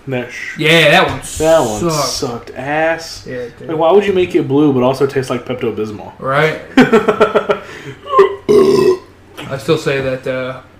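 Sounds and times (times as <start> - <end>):
speech: 0.0 - 7.5, 9.5 - 10.7
laughter: 6.7 - 8.5
burp: 8.5 - 9.1.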